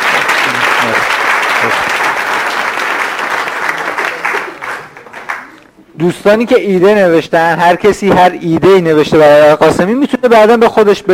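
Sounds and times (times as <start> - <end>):
audience applause at a session with slides: 0.0 - 5.6
speech: 6.0 - 11.1.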